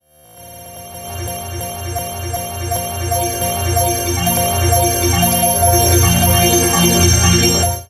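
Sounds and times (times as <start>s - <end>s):
pulsing chime: 0.6s - 7.8s.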